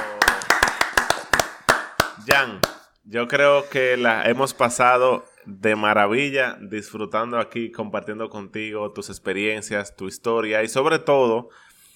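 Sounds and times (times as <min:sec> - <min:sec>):
hands clapping: 0:00.0 - 0:02.9
speech: 0:02.3 - 0:11.7.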